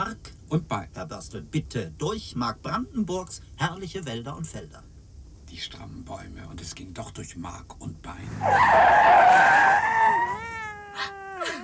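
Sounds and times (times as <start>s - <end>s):
speech: 0.5s - 4.9s, 5.5s - 11.1s
grey neglected-looking cat meowing: 9.3s - 11.6s.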